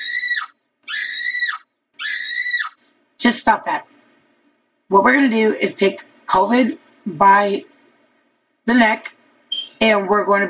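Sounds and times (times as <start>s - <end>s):
voice imitating panicked screaming: 0.0s - 2.8s
speech: 3.2s - 3.9s, 4.9s - 7.7s, 8.7s - 9.2s, 9.8s - 10.4s.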